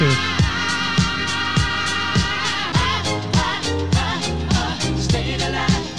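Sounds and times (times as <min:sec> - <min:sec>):
steady four-on-the-floor kick drum pulse: 0:00.0 - 0:05.9
sustained backing vocals: 0:00.0 - 0:05.9
upbeat disco music from a 1977 film trailer: 0:00.0 - 0:05.9.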